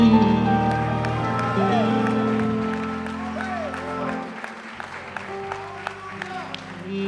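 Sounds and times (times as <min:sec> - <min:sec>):
sustained keyboard or organ chords: 0:00.0 - 0:07.0
audience clapping: 0:00.1 - 0:07.0
audience shouting with excited voices: 0:01.0 - 0:04.2.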